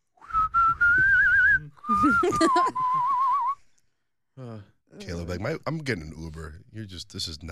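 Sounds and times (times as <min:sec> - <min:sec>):
person whistling a wavering little tune: 0:00.2 - 0:03.7
speech: 0:01.9 - 0:03.1, 0:04.4 - 0:07.5
voice or laughter: 0:01.9 - 0:03.1.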